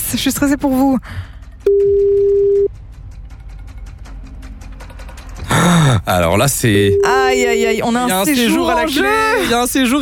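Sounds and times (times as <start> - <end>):
speech: 0.1 - 2.2, 6.0 - 10.0
telephone ringing on the line, single-pitched electronic tone: 1.7 - 2.7.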